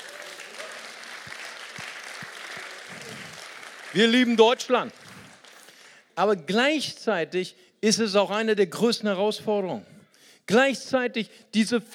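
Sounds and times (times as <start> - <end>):
crowd applauding: 0.0 - 6.0
speech: 3.9 - 5.0, 6.2 - 11.9.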